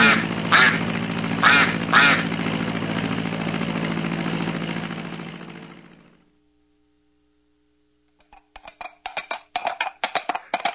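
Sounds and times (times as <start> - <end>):
duck quacking: 0.0 - 2.3
airplane engine drone: 0.0 - 6.3.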